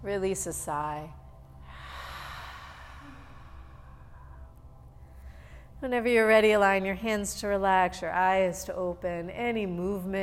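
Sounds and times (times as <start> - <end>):
speech: 0.0 - 1.2, 5.8 - 10.2
faint low hum: 0.0 - 10.2
deep inhale at the close of a guided breathing session: 1.6 - 5.8.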